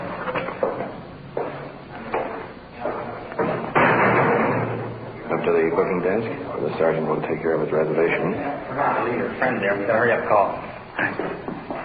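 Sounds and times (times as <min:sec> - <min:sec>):
clanking thuds: 0:00.5 - 0:05.0
big heavy iron door slamming shut: 0:03.4 - 0:05.0
speech: 0:05.4 - 0:11.6.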